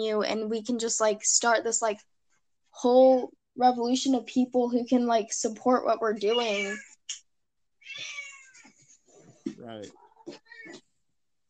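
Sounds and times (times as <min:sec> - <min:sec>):
speech: 0:00.0 - 0:02.1, 0:02.8 - 0:07.2, 0:09.6 - 0:10.8
pet cat meowing: 0:07.8 - 0:08.6, 0:10.0 - 0:10.8.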